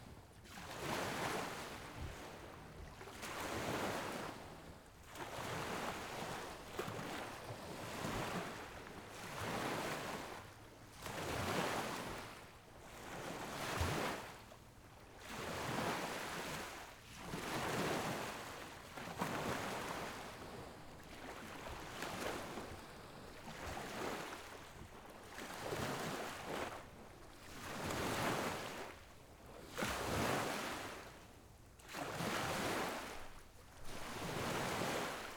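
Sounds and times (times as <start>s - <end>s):
water on a lake shore: 0.5s - 31.3s, 31.8s - 35.3s.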